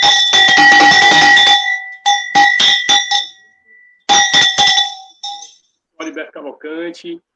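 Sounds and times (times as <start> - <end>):
metal chocalho cowbell being shaken: 0.0 - 3.4, 4.1 - 5.6
speech: 6.5 - 7.3.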